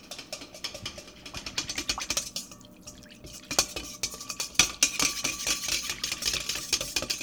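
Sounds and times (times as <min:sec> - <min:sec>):
whisking yeast to dissolve it: 0:00.0 - 0:07.2.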